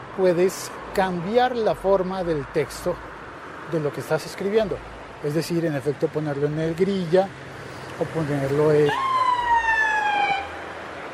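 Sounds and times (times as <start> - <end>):
low traffic rumble: 0.0 - 11.1
speech: 0.2 - 3.1, 3.7 - 9.0
ambulance siren passing by: 8.8 - 10.6.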